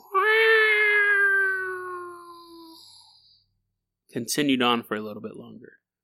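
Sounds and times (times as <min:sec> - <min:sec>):
long drawn-out cat yowl with tail: 0:00.0 - 0:02.7
speech: 0:04.2 - 0:05.8.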